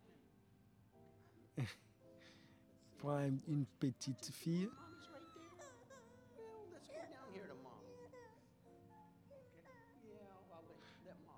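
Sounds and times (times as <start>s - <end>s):
speech: 1.6s - 1.9s, 3.0s - 5.2s
baby crying softly during a church baby dedication: 4.7s - 10.2s.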